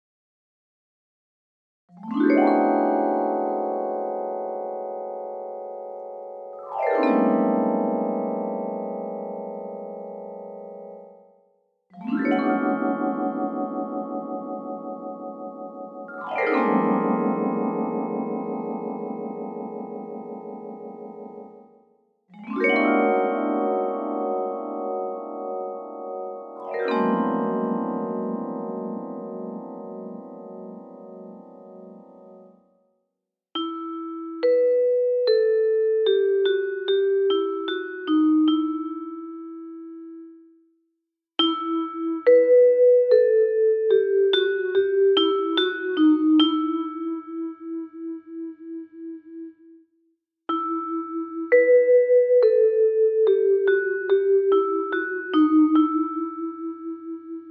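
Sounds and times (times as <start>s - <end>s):
vibraphone: 1.9s - 32.7s, 33.6s - 40.5s, 41.4s - 49.5s, 50.5s - 57.4s.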